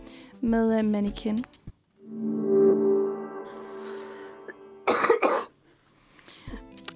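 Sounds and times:
speech: 0.4 - 1.6
sustained musical tone: 2.0 - 5.2
cough: 4.8 - 5.6.

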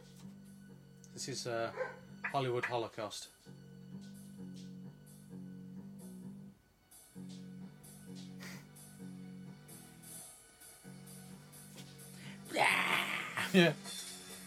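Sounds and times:
speech: 1.2 - 3.6, 13.6 - 14.0
dog barking: 1.7 - 2.1.

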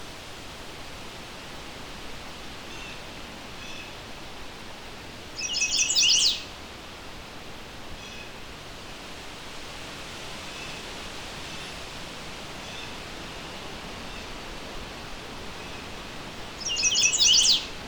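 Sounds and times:
hiss: 0.0 - 17.8
chestnut-sided warbler singing: 5.4 - 6.5, 16.6 - 17.7.

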